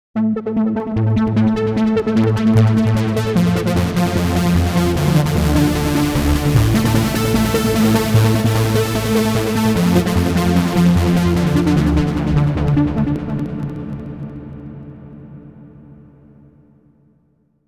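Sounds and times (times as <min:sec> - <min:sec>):
Korg synthesized brass: 0:00.4 - 0:13.9.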